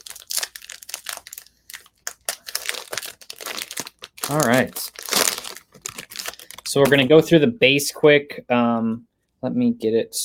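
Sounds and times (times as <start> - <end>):
basketball trading card foil packs being ripped open: 0.0 - 7.0
speech: 4.3 - 5.0, 6.7 - 10.2.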